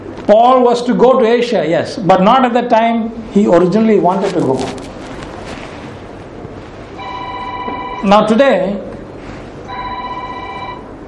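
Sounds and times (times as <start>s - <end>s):
low hum of room noise: 0.0s - 11.0s
speech: 0.3s - 5.0s, 8.0s - 8.9s
phone ringing with an electronic ringtone: 7.0s - 8.3s, 9.7s - 11.0s.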